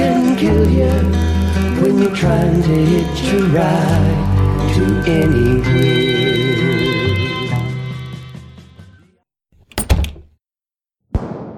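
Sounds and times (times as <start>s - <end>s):
music: 0.0s - 9.2s
speech: 0.4s - 6.4s
muffled gunshot: 11.2s - 11.5s.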